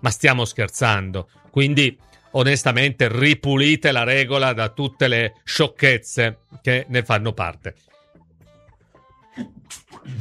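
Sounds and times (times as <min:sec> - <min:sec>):
speech: 0:00.0 - 0:07.9, 0:09.4 - 0:10.1
person sneezing: 0:09.4 - 0:10.1.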